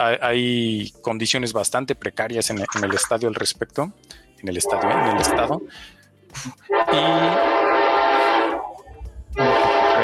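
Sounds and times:
speech: 0.0 - 7.7
loud train horn blasts: 4.6 - 5.6, 6.7 - 8.8, 9.4 - 10.0.

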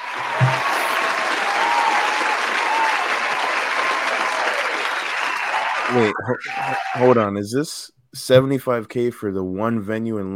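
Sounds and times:
crowd applause: 0.0 - 7.2
speech: 5.9 - 10.3.

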